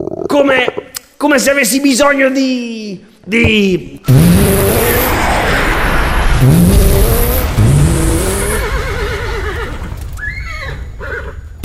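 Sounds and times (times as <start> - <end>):
speech: 0.3 - 5.0
car engine revving: 4.1 - 9.1
tires screeching: 4.1 - 11.2
horse whinnies: 8.1 - 11.5.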